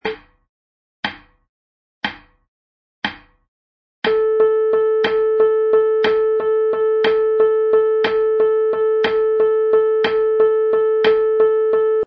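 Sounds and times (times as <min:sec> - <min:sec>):
tresillo rhythm: 0:04.1 - 0:12.0.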